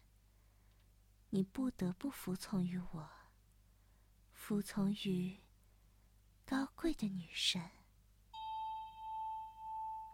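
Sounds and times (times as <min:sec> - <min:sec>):
speech: 0:01.3 - 0:03.2, 0:04.4 - 0:05.4, 0:06.5 - 0:07.8
bell chime struck during a trance induction: 0:08.4 - 0:10.1.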